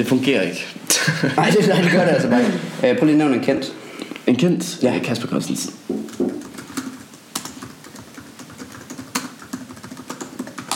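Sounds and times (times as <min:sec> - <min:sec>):
speech: 0:00.0 - 0:05.9
laughter: 0:00.9 - 0:02.7
typing on a computer keyboard: 0:06.0 - 0:10.7.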